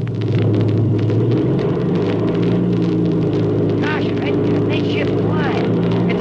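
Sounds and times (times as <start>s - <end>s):
airplane engine warmed up for takeoff rumbling: 0.0s - 6.1s
voices speaking: 3.8s - 6.1s.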